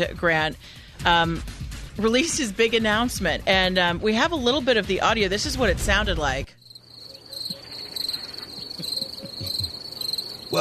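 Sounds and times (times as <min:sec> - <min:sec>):
speech: 0:00.0 - 0:06.6
chorus of crickets chirping: 0:06.5 - 0:10.5.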